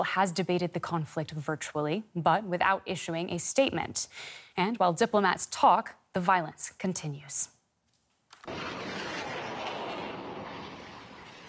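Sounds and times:
speech: 0.0 - 7.6
rockets fired into the sky during attacks on Israel: 8.4 - 11.4.

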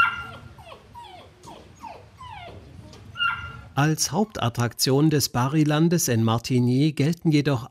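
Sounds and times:
soft low rumble: 0.0 - 4.1
large St. Bernard dog whimpering: 0.0 - 4.4
speech: 3.8 - 7.7.

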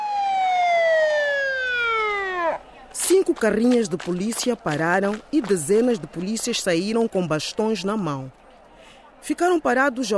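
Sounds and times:
siren: 0.0 - 2.6
speech: 3.2 - 8.4, 9.2 - 10.1.

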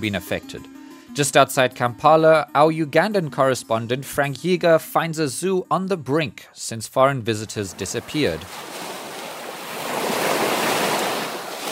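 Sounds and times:
speech: 0.0 - 8.8
lake waves rolling onto a shore: 7.7 - 11.7.

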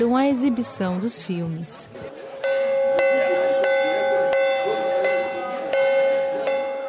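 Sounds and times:
speech: 0.0 - 2.2
faint murmur of people: 0.0 - 6.8
bell ringing to call audience into a screening room: 2.4 - 6.8.

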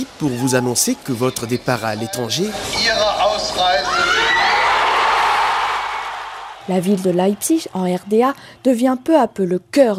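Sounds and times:
large crowd of thousands in a garden cheering and shouting euphorically: 0.0 - 1.3, 3.5 - 8.2
speech: 0.0 - 4.2, 6.7 - 9.9.

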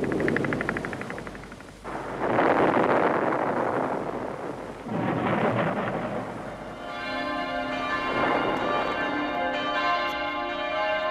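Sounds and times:
loud rumbling booms: 0.0 - 6.7
church bells of the Frauenkirche in Dresden ringing: 6.5 - 11.0.

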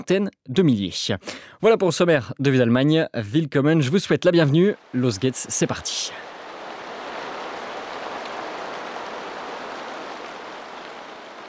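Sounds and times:
speech: 0.0 - 6.3
steady rain pouring down: 4.7 - 11.4.

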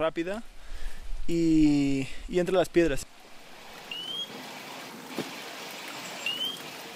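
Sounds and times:
man talking: 0.0 - 0.5, 1.2 - 3.1
river water trickling over rocks: 3.1 - 6.9
faint high chirps: 3.9 - 4.3, 6.0 - 6.7.

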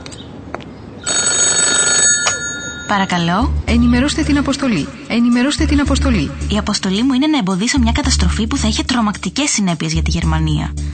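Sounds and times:
telephone bell ringing: 1.0 - 3.4
speech: 2.9 - 10.9.

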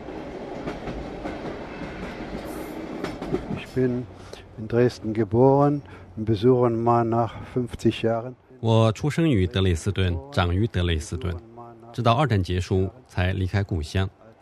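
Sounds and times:
moving train bound for Dresden rumbling with a rattling low roar: 0.0 - 14.3
speech: 3.3 - 14.3.

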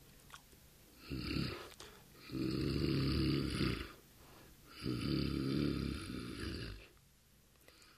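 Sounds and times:
lion snoring while dozing off by a fire on a cold day: 1.0 - 4.0, 4.7 - 6.9.

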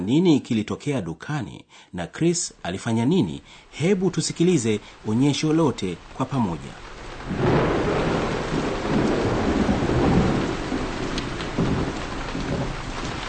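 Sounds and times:
speech: 0.0 - 7.5
steady heavy rain: 2.7 - 13.2.

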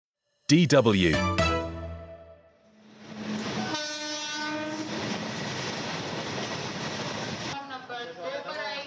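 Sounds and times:
speech: 0.5 - 1.4
train horn blaring: 1.7 - 5.1
train rolling on railway tracks to the Old Delhi Railway Station: 2.7 - 8.2.

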